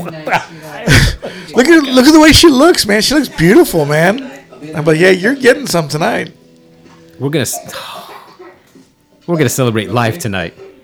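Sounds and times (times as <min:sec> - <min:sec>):
laughter: 0:00.0 - 0:02.4
speech: 0:00.0 - 0:06.4, 0:07.2 - 0:08.1, 0:09.3 - 0:10.7
single short rough cough from a man: 0:00.1 - 0:01.6.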